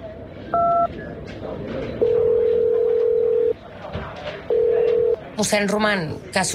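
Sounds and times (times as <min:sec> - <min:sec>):
low murmur of noise: 0:00.0 - 0:06.5
telephone dial tone while placing a call: 0:00.6 - 0:00.9, 0:02.0 - 0:03.6, 0:04.5 - 0:05.2
two-tone telephone keypad beep: 0:00.6 - 0:00.9
speech: 0:05.4 - 0:06.5.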